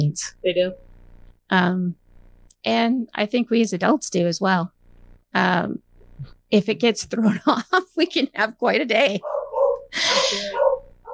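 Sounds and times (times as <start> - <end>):
speech: 0.0 - 0.9, 1.5 - 2.0, 2.6 - 10.7
dog barking harshly with short tonal yelps: 9.2 - 11.1.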